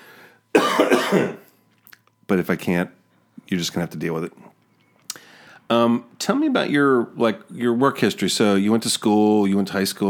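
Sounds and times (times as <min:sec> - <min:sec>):
harsh cough from a person who has had pneumonia: 0:00.5 - 0:01.5
speech: 0:00.8 - 0:01.4, 0:02.3 - 0:04.5, 0:05.7 - 0:10.0.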